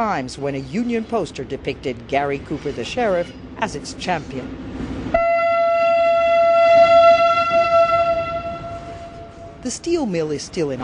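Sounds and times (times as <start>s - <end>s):
speech: 0.0s - 4.9s, 9.6s - 10.8s
low rumbling background: 2.5s - 10.8s
freight train horn blast: 5.1s - 9.6s.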